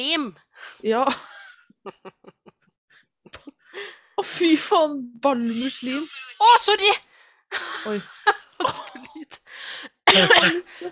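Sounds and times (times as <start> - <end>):
speech: 0.0 - 2.4, 3.8 - 10.9
laughter: 1.1 - 2.7, 7.6 - 9.5
sick person coughing harshly: 10.1 - 10.9.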